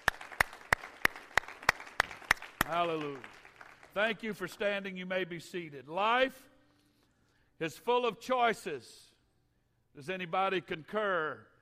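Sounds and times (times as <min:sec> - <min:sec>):
audience clapping in unison in praise: 0:00.0 - 0:04.8
speech: 0:02.7 - 0:06.5, 0:07.6 - 0:09.0, 0:10.0 - 0:11.5.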